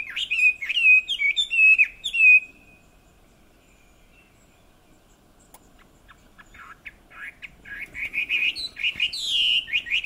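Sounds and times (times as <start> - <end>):
Chinese hwamei Garrulax canorus singing loud slurred whistled phrases: 0.0 - 2.9, 6.4 - 10.0.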